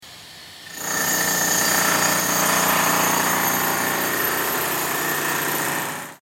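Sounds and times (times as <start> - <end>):
hammer drill: 0.0 - 6.2.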